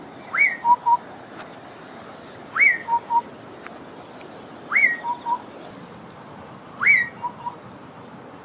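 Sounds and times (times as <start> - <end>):
Southern boubou calling: 0.3 - 1.0, 4.7 - 5.5, 6.8 - 7.4.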